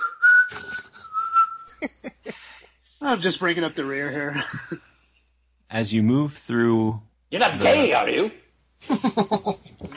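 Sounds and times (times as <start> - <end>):
person whistling softly: 0.0 - 1.8
speech: 3.0 - 4.9, 5.7 - 9.6.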